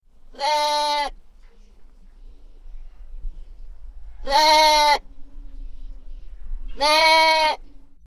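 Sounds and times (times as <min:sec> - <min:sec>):
faint low background rumble: 0:00.0 - 0:08.0
animal bleat: 0:00.3 - 0:01.2, 0:04.2 - 0:05.1, 0:06.7 - 0:07.7.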